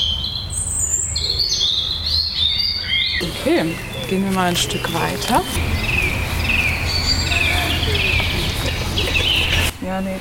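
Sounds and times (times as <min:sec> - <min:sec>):
European robin singing: 0:00.0 - 0:10.1
speech: 0:03.2 - 0:05.8, 0:09.9 - 0:10.1
steady low outdoor rumble: 0:03.2 - 0:10.1.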